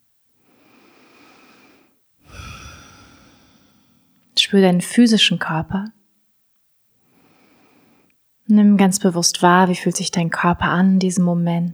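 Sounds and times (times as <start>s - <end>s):
deep breathing during a calm grounding exercise: 0.5s - 4.2s, 7.1s - 8.1s
speech: 4.5s - 6.0s, 8.6s - 11.7s.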